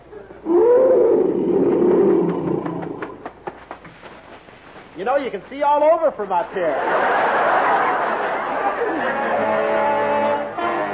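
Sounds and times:
huge lion growling: 0.4 - 3.2
speech: 5.2 - 7.2
laughter: 6.4 - 10.0.

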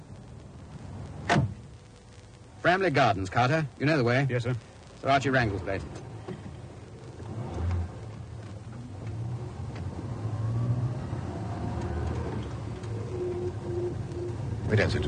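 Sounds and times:
speech: 2.6 - 6.0, 14.7 - 15.0
car engine rumbling and revving as the car pulls away: 5.1 - 15.0.

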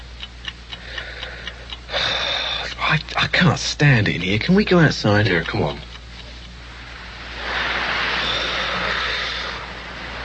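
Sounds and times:
clock ticking loudly: 0.0 - 10.2
speech: 2.9 - 5.9
broad rush of noise: 6.8 - 10.2.

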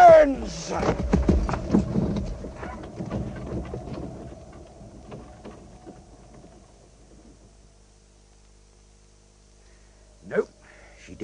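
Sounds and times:
horse galloping: 0.0 - 7.4
rumbling noise: 0.0 - 11.2
speech: 0.5 - 1.1.

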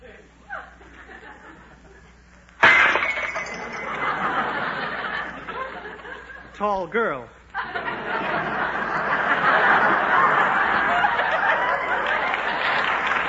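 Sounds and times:
laughter: 0.5 - 2.1, 3.6 - 6.5, 7.6 - 13.2
tray of dishes crashing to the floor with shattering crockery: 2.6 - 4.9
speech: 6.6 - 8.6.

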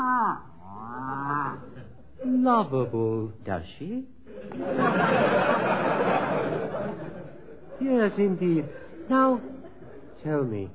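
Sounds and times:
cow mooing: 0.0 - 1.6
speech: 2.4 - 5.8, 7.8 - 9.6, 10.2 - 10.7
laughter: 4.3 - 10.2.

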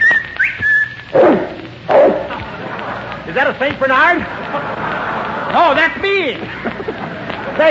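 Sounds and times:
sharp human whistle to call a dog: 0.0 - 1.1
loud deep dog barks: 1.2 - 2.4
laughter: 2.2 - 7.6
speech: 3.4 - 4.9, 5.5 - 6.6.

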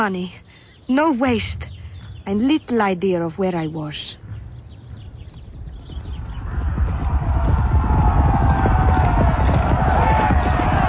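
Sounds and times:
speech: 0.0 - 1.7, 2.3 - 4.2
many horse hooves of a French cavalry charge galloping: 4.3 - 10.8.

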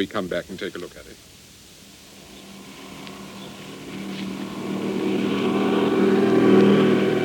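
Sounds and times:
speech: 0.0 - 1.4
car engine pulling up: 1.9 - 7.2.

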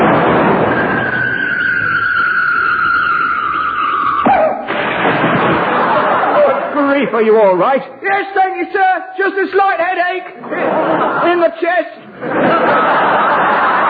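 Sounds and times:
crash of impact against a brick wall: 0.0 - 2.1, 4.2 - 6.4
circus cannon firing with too much gunpowder: 0.0 - 6.3
long falling whistle of a human cannonball flying: 0.1 - 4.7
laughter: 5.4 - 7.1, 10.4 - 13.8
speech: 7.2 - 13.0.

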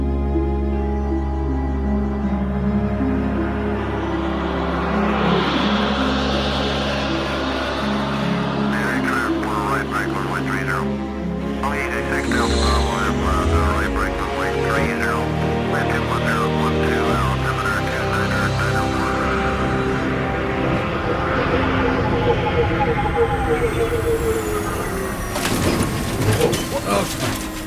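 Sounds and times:
spacecraft whirring droning mechanical tones: 0.0 - 27.6
spacecraft landing low rumble: 2.4 - 25.3.

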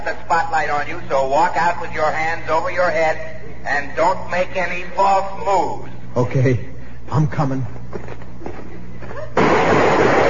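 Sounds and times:
speech: 0.3 - 8.1
gunshot sound effect in a comedy sketch: 9.4 - 10.2.

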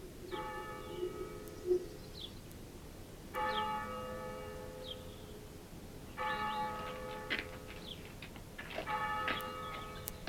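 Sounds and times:
church bell tolling the passing bell: 0.4 - 1.5, 3.3 - 5.1, 6.1 - 7.8, 8.8 - 10.1.

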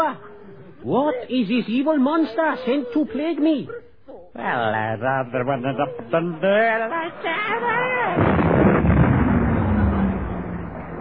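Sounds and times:
speech: 0.0 - 8.6
explosion sound effect: 8.2 - 11.0.

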